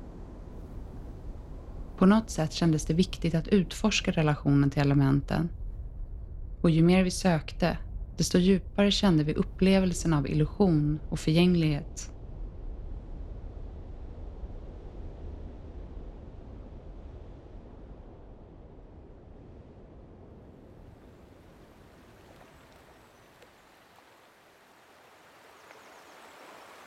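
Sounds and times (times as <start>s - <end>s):
speech: 2.0s - 5.6s, 6.6s - 12.1s
river water flowing between the mountains and the sea: 21.7s - 26.8s.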